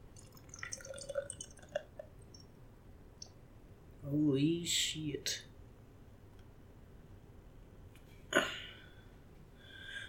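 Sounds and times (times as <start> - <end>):
beer pouring into a glass: 0.1 - 2.0
speech: 4.1 - 5.5.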